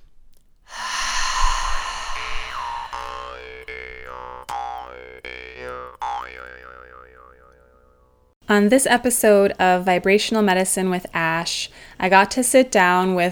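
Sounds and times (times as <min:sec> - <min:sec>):
deep breath: 0:00.7 - 0:03.6, 0:11.7 - 0:12.0
music with twangy tones that bend in pitch: 0:02.9 - 0:08.3
speech: 0:08.5 - 0:13.3.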